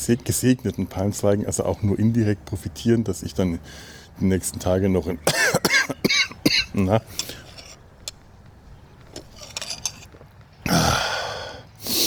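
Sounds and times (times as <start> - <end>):
speech: 0.0 - 5.7, 6.8 - 7.4
sick person coughing: 5.2 - 6.9.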